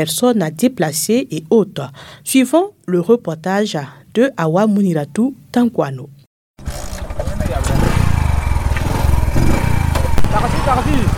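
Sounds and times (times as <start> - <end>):
speech: 0.0 - 6.2, 10.4 - 11.1
motorcycle engine riding through streets: 6.6 - 11.1.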